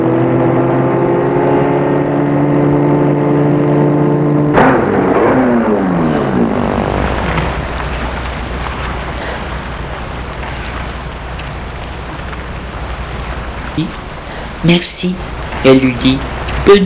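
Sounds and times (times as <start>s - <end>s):
car engine slowing to a stop in front of an apartment building: 0.0s - 14.6s
soft rain-like hiss: 6.2s - 16.8s
speech: 14.7s - 16.8s.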